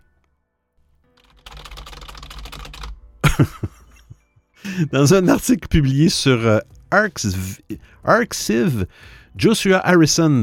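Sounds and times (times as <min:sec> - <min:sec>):
computer keyboard typing: 0:01.2 - 0:03.1
laughter: 0:03.2 - 0:04.2
speech: 0:03.4 - 0:03.7, 0:04.8 - 0:10.4.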